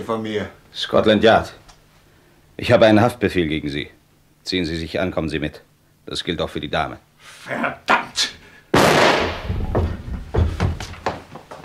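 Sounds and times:
speech: 0:00.0 - 0:01.6, 0:02.6 - 0:08.4
gunshot sound effect in a crime radio drama: 0:08.7 - 0:09.7.

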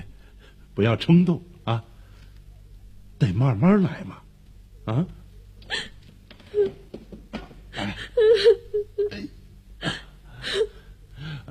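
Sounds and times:
speech: 0:00.8 - 0:01.9, 0:03.2 - 0:04.2, 0:04.9 - 0:05.2
girl crying in hiccuping sobs and whimpers: 0:06.5 - 0:06.8, 0:07.8 - 0:09.2.

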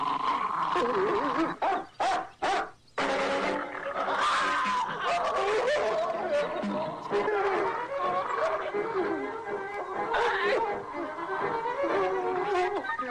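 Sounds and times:
laughter: 0:00.6 - 0:01.9, 0:03.1 - 0:13.0
dog barking, yipping and whimpering excitedly: 0:00.8 - 0:10.8.

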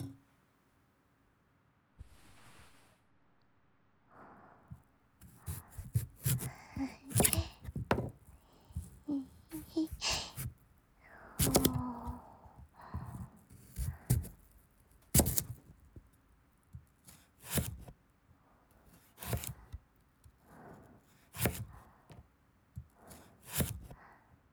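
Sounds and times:
kitchen knife chopping a peeled carrot into thin slices: 0:00.0 - 0:00.2, 0:05.2 - 0:16.2, 0:16.8 - 0:18.0, 0:18.8 - 0:24.0.

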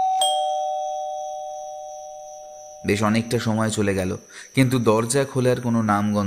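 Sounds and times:
electric doorbell chime at a house door: 0:00.0 - 0:03.7
speech: 0:02.8 - 0:06.2.

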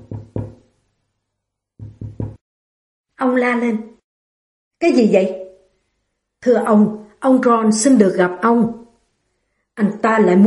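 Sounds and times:
timid knocking on a glass door: 0:00.0 - 0:00.6, 0:01.8 - 0:02.4
speech: 0:03.2 - 0:03.9, 0:04.8 - 0:05.4, 0:06.4 - 0:08.8, 0:09.8 - 0:10.4.

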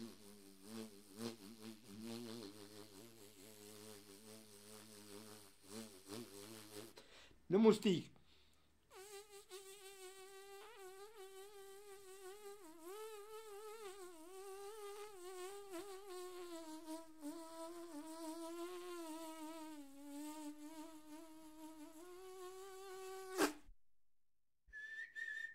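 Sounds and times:
bumblebee buzzing: 0:00.0 - 0:07.0, 0:08.9 - 0:23.6
speech: 0:07.5 - 0:08.2.

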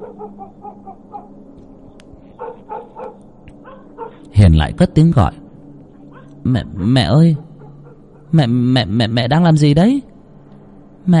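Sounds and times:
black dog barking loudly: 0:00.0 - 0:01.4, 0:02.4 - 0:04.3, 0:06.1 - 0:06.4, 0:07.3 - 0:08.4
speech: 0:04.4 - 0:05.4, 0:06.4 - 0:07.4, 0:08.3 - 0:10.1.

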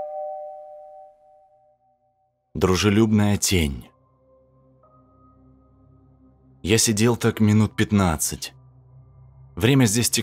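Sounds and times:
faint doorbell chime: 0:00.0 - 0:01.8
speech: 0:02.6 - 0:03.9, 0:06.7 - 0:08.6, 0:09.6 - 0:10.2.

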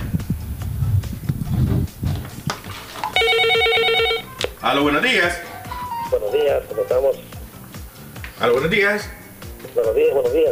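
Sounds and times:
hoof-like clopping and knocking: 0:00.9 - 0:03.8
telephone ringing with an incoming call: 0:03.1 - 0:04.4, 0:05.5 - 0:06.6
speech: 0:04.6 - 0:05.5, 0:06.1 - 0:07.3, 0:08.4 - 0:10.5.

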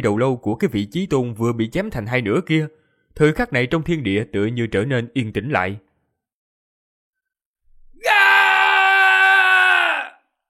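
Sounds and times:
speech: 0:00.0 - 0:05.9
gravely wounded warrior screaming: 0:07.9 - 0:10.3.

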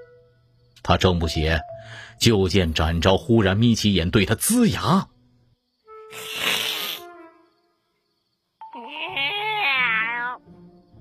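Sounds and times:
speech: 0:00.8 - 0:05.1
person imitating a cat's meow: 0:08.6 - 0:10.4.

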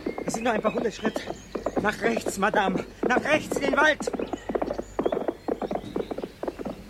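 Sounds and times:
hooves of two ridden horses clip-clopping: 0:00.0 - 0:06.8
speech: 0:00.3 - 0:04.8.

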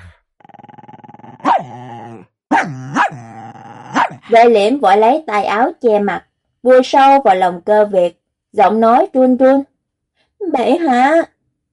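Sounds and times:
dog growling fiercely: 0:00.0 - 0:04.4
speech: 0:04.3 - 0:09.7, 0:10.4 - 0:11.3.

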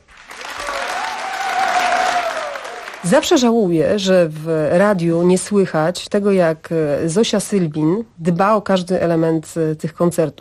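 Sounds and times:
concert audience applause: 0:00.0 - 0:03.5
speech: 0:03.0 - 0:10.3.

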